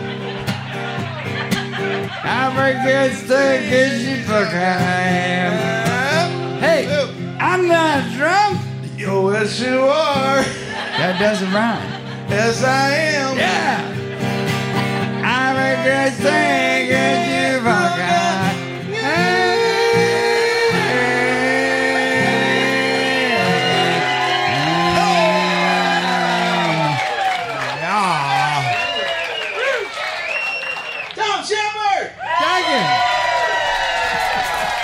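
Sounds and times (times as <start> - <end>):
scattered clapping: 0.0 - 2.3, 22.9 - 34.8
rowdy crowd yelling and screaming in a bar: 0.0 - 4.6, 15.2 - 34.8
laughter: 0.0 - 7.0, 9.6 - 30.9, 32.6 - 34.8
speech: 2.3 - 5.8, 6.6 - 14.0.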